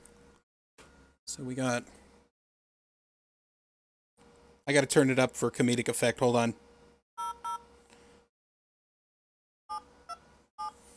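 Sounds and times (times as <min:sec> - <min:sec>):
speech: 0:01.3 - 0:02.0, 0:04.7 - 0:06.6
two-tone phone keypad beeps as a phone number is typed: 0:07.2 - 0:07.6, 0:09.7 - 0:10.8.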